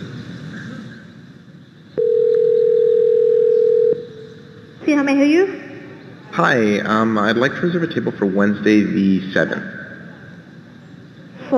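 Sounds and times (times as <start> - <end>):
low noise: 0.0 - 11.5
telephone dial tone on a call to a small restaurant: 2.0 - 4.0
speech: 4.9 - 5.6, 6.4 - 9.8.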